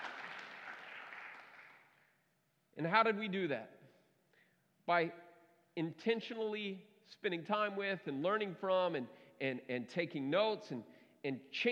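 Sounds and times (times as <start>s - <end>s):
church audience applauding: 0.0s - 1.8s
speech: 2.8s - 3.8s, 4.9s - 5.2s, 5.8s - 11.7s.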